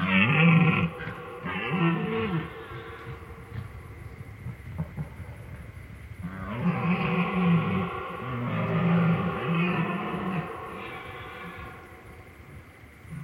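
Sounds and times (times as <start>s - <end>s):
red deer rutting bellows: 0.0s - 3.7s, 6.2s - 12.2s
low background noise: 0.0s - 13.2s.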